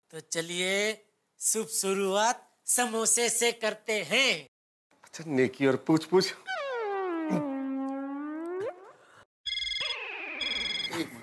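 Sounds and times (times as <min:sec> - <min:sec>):
speech: 0:00.1 - 0:04.5, 0:05.2 - 0:06.5
swooping warbling sound: 0:06.5 - 0:09.0
phone ringtone electronic melody: 0:09.5 - 0:11.0.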